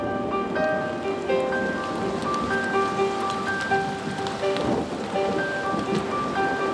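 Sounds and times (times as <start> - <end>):
gentle melody of sustained tones: 0.0 - 6.7
heavy rain during a storm: 0.0 - 6.7
low rumble of thunder in the hills: 0.0 - 6.7.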